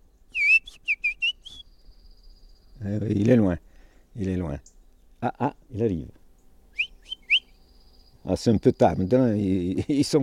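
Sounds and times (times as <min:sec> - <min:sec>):
person whistling an imitation of European robin song: 0:00.3 - 0:01.8, 0:06.8 - 0:07.5
speech: 0:02.8 - 0:03.6, 0:04.2 - 0:06.2, 0:08.2 - 0:10.2.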